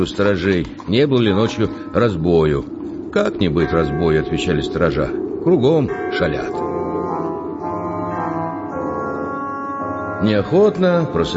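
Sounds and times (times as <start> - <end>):
speech: 0.0 - 6.7, 10.2 - 11.3
church bells ringing for Lent over misty Moscow streets: 1.2 - 11.3.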